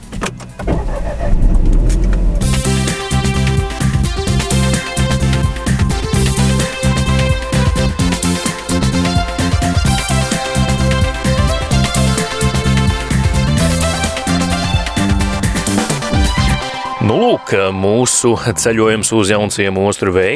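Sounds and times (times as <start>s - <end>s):
road rumble: 0.0s - 16.7s
car engine humming while driving: 0.0s - 16.9s
speech: 17.5s - 20.3s.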